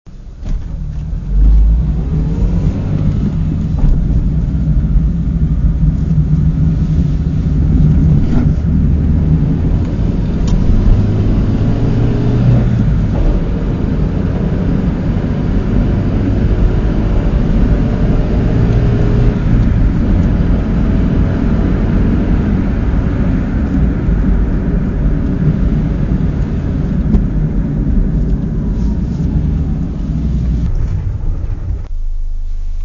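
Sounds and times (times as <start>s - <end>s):
car interior road noise: 0.1s - 32.8s.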